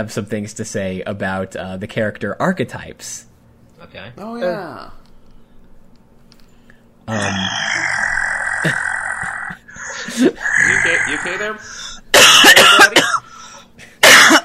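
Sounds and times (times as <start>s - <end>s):
speech: 0.0s - 5.0s, 7.1s - 7.9s, 8.6s - 8.9s, 10.1s - 11.9s, 12.5s - 13.2s
deep guttural death growl from a person: 7.1s - 11.7s
harsh coughing fit: 8.7s - 14.4s
gasp: 11.6s - 12.0s, 13.2s - 13.7s.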